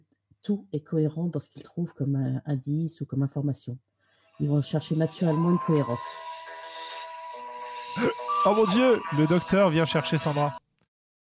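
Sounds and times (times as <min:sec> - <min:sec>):
speech: 0:00.4 - 0:06.3, 0:08.0 - 0:10.6
mobile phone ringtone with bright electronic tones: 0:04.4 - 0:10.6
laughter: 0:08.0 - 0:08.2.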